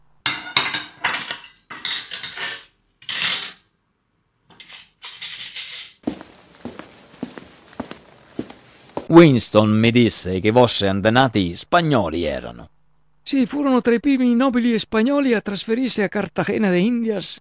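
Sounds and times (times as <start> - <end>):
plates and cutlery clattering as dishes are cleared: 0.3 - 3.6, 4.5 - 6.0
speech: 9.1 - 17.4.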